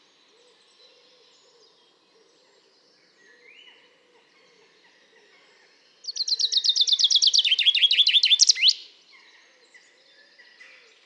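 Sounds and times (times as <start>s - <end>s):
common chaffinch singing: 6.0s - 8.9s.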